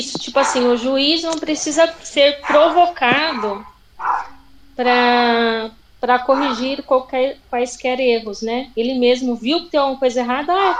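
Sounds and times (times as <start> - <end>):
speech: 0.0 - 3.7, 4.8 - 10.7
small dog barking: 0.3 - 0.9, 2.3 - 4.4, 6.3 - 6.7, 10.6 - 10.7.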